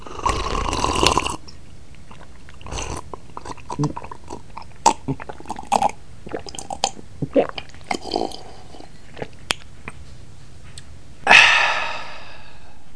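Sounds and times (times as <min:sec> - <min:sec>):
drinking: 0:00.0 - 0:09.4.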